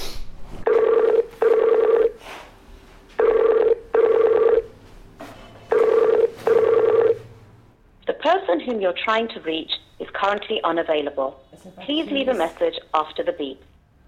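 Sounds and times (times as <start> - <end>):
faint noise: 0.0 - 14.0
telephone ringing tone in paired bursts: 0.7 - 2.2, 3.2 - 4.8, 5.7 - 7.3
speech: 8.7 - 13.7.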